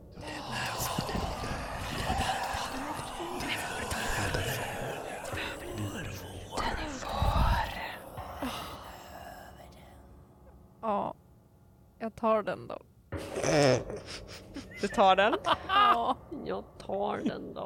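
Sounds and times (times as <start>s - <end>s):
low moaning tones: 0.0s - 9.9s
eerie breathy ghostly whispering: 0.0s - 10.2s
speech: 12.2s - 12.9s, 13.5s - 14.2s, 14.8s - 17.6s.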